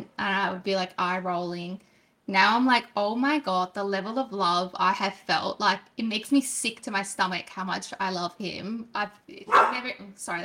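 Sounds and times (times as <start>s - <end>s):
speech: 0.1s - 10.4s
dog barking: 9.5s - 9.9s.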